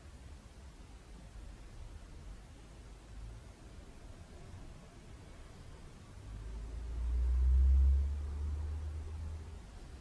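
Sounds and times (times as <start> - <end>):
car passing outside with a low rumble: 4.1 - 9.9.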